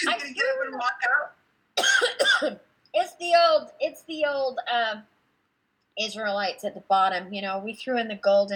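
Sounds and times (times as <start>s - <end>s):
speech: 0.0s - 1.4s, 2.0s - 5.1s, 6.0s - 8.5s
loud rough cough: 1.8s - 2.6s.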